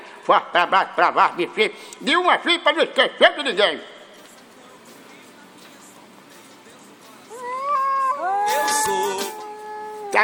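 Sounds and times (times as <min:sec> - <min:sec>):
speech: 0:00.2 - 0:04.0
cat meowing: 0:07.4 - 0:10.2.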